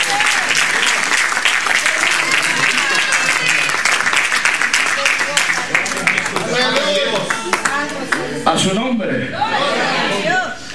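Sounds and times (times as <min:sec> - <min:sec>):
audience applause: 0:00.0 - 0:08.4
scattered voices and cheers: 0:00.0 - 0:08.4, 0:09.3 - 0:10.6.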